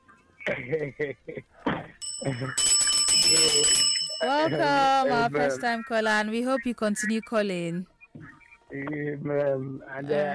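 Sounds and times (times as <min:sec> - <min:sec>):
speech: 0:00.5 - 0:10.3
bell ringing: 0:02.0 - 0:05.4.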